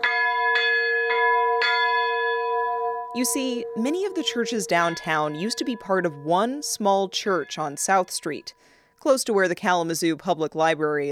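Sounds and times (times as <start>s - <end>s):
large historic church bell ringing: 0.0s - 8.5s
speech: 3.2s - 11.1s.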